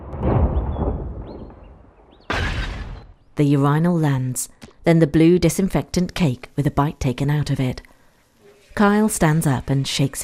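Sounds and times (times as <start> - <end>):
petrol pump explosion boom with rumbling decay: 0.0 - 3.2
speech: 3.4 - 7.9, 8.8 - 10.2.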